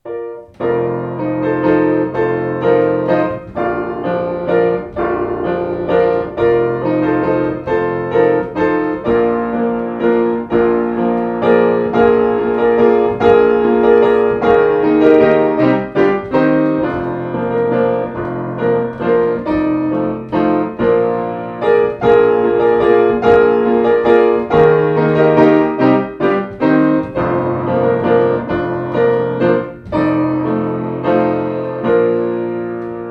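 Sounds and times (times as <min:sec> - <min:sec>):
piano dance piece: 0:00.0 - 0:33.1.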